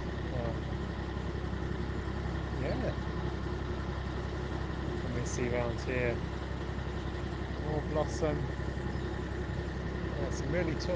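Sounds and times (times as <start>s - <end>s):
engine idling beside a tree-lined canal: 0.0s - 10.9s
speech: 5.4s - 6.4s, 7.7s - 8.6s, 10.2s - 10.9s
faint bird chirps beside a tree-lined canal: 8.8s - 9.3s.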